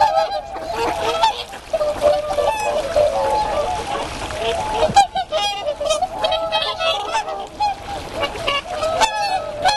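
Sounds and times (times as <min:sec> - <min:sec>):
flock of whooper swans trumpeting with nasal honks: 0:00.0 - 0:09.7.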